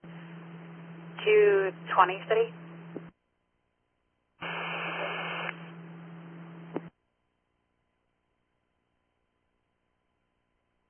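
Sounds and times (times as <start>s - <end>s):
steady low hum: 0.0s - 3.2s, 4.4s - 6.9s
speech: 1.2s - 3.0s
radio static: 4.4s - 5.7s.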